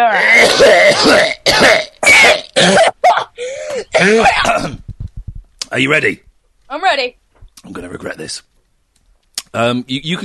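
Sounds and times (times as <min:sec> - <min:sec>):
speech: 0:00.0 - 0:01.4, 0:04.0 - 0:04.8, 0:05.8 - 0:08.5, 0:09.5 - 0:10.2
person clearing throat: 0:00.2 - 0:03.0, 0:03.9 - 0:04.8
person coughing: 0:00.4 - 0:04.8.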